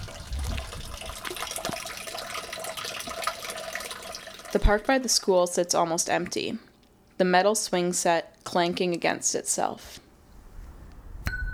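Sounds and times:
melting snow water trickling and splashing into a drain: 0:00.0 - 0:05.2
speech: 0:04.5 - 0:10.0.

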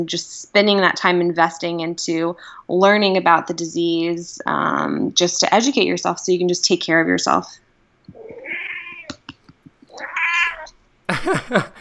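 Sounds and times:
speech: 0:00.0 - 0:07.6, 0:11.2 - 0:11.8
cat meowing: 0:08.2 - 0:09.2, 0:09.9 - 0:10.7
laughter: 0:11.1 - 0:11.8.

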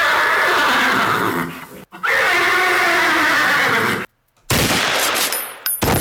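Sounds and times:
horse neighing and whinnying: 0:00.0 - 0:04.1
rapid gunfire-like bursts: 0:04.5 - 0:06.0.

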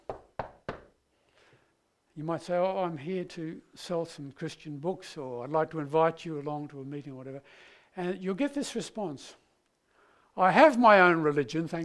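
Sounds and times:
firm knocks on a wooden door: 0:00.0 - 0:00.9
speech: 0:02.2 - 0:09.4, 0:10.4 - 0:11.8.

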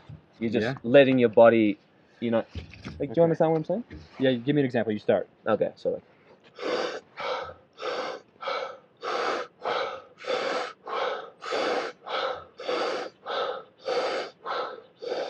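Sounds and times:
speech: 0:00.4 - 0:06.7
deep breaths drawn in and let out: 0:06.2 - 0:15.2.

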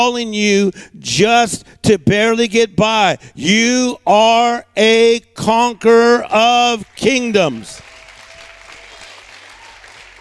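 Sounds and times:
speech: 0:00.0 - 0:07.9
audience clapping: 0:06.8 - 0:10.1.

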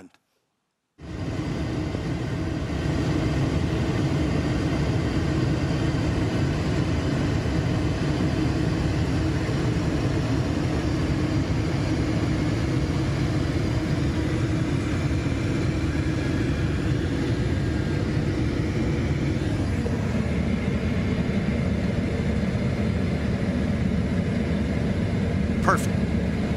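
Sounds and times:
airplane engine drone during landing: 0:01.0 - 0:26.5
voices: 0:25.6 - 0:25.9.

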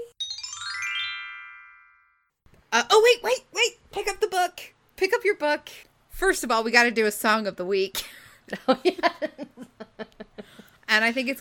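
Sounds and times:
magical wind chimes: 0:00.2 - 0:01.9
speech: 0:02.7 - 0:09.8, 0:10.9 - 0:11.4.

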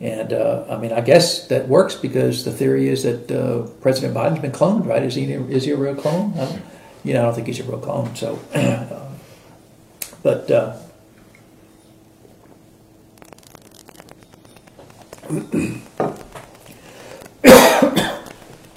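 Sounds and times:
speech: 0:00.0 - 0:09.1, 0:10.2 - 0:10.8, 0:15.3 - 0:16.2
person coughing: 0:08.5 - 0:08.9, 0:15.3 - 0:15.9, 0:17.4 - 0:18.4.

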